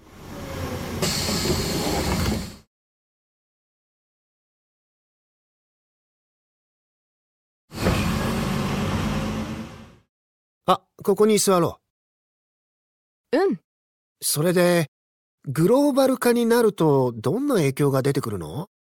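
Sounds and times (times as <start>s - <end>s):
bus engine rumble as bus pulls in: 0.0s - 2.6s, 7.7s - 10.0s
speech: 1.0s - 1.6s, 10.7s - 11.8s, 14.2s - 18.8s.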